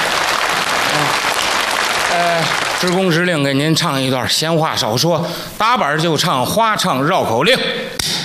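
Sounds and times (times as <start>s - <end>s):
audience applause at a comic performance: 0.0s - 3.9s
speech: 2.2s - 8.2s.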